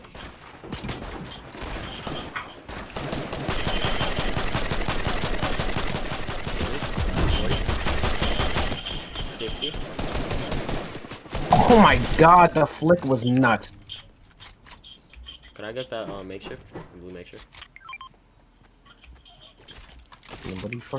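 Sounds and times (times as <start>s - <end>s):
rapid automatic gunfire in a video game: 0.8s - 12.5s
speech: 11.7s - 13.8s, 15.7s - 17.6s, 20.5s - 20.9s.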